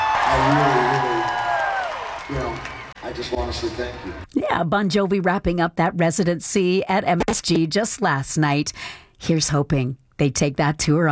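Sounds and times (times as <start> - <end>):
individual shouts and whoops: 0.0 - 2.2
big concert crowd roaring and cheering: 0.0 - 4.2
speech: 0.3 - 1.0, 3.1 - 11.1.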